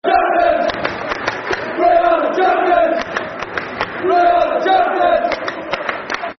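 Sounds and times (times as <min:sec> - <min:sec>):
football crowd chanting a soccer song in Sunderland: 0:00.0 - 0:05.8.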